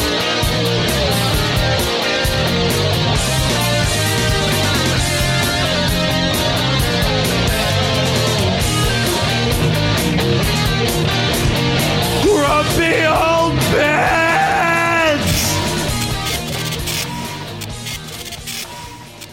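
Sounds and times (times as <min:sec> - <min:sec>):
band playing loud dense music: 0:00.0 - 0:18.2
man screaming and yelling: 0:12.2 - 0:16.0.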